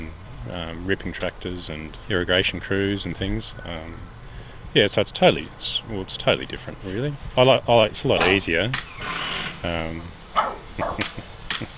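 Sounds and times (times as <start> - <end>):
speech: 0.4 - 10.2, 10.8 - 11.7
working dog on a horticultural property barking: 10.4 - 11.1.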